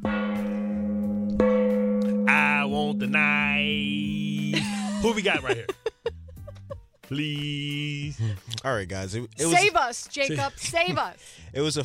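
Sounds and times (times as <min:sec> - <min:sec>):
gong struck as a segment sound effect: 0:00.0 - 0:04.7
speech: 0:02.9 - 0:05.8, 0:07.1 - 0:11.8
laughter: 0:04.4 - 0:07.2, 0:10.2 - 0:11.2.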